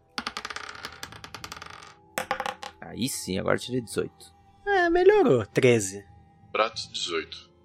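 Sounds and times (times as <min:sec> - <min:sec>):
twenty-sided dice rolling on a hard tabletop: 0:00.0 - 0:02.8
speech: 0:02.8 - 0:07.5.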